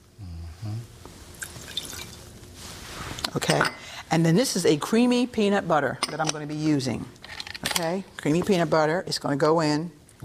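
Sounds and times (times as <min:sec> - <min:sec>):
water pouring into a pot: 0:01.4 - 0:02.2
speech: 0:03.3 - 0:07.2, 0:07.8 - 0:10.2.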